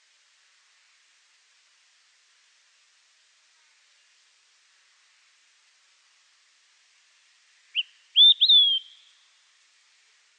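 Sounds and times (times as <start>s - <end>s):
olive-sided flycatcher Contopus cooperi singing: 7.7s - 9.2s.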